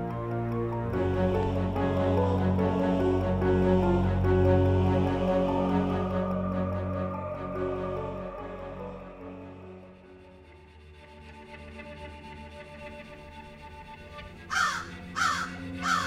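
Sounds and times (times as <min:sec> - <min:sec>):
low sustained musical drone: 0:00.0 - 0:16.0
crows cawing: 0:14.5 - 0:16.0.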